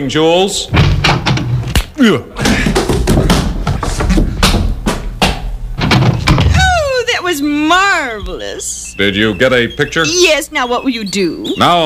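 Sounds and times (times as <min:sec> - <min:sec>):
speech: 0:00.0 - 0:01.2, 0:02.0 - 0:03.0, 0:07.5 - 0:11.8
door slamming: 0:00.7 - 0:01.8, 0:02.4 - 0:07.0
squeaky swooping vocal noises: 0:06.5 - 0:11.8.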